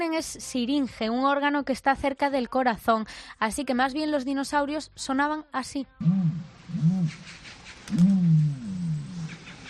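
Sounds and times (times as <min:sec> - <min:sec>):
speech: 0:00.0 - 0:08.6
ostrich deep resonant grunting calls: 0:06.0 - 0:09.6.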